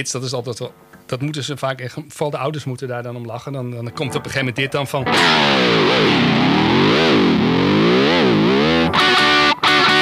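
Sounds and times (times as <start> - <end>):
speech: 0.0 - 7.4
race car engine roaring and revving: 5.1 - 8.9.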